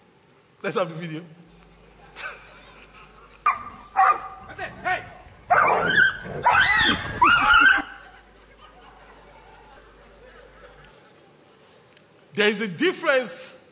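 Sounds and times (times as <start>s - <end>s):
speech: 0.6s - 1.4s, 12.4s - 13.4s
laughter: 1.8s - 4.0s, 6.8s - 11.5s
dog barking and yipping at a tiger: 3.5s - 4.4s, 5.5s - 7.8s.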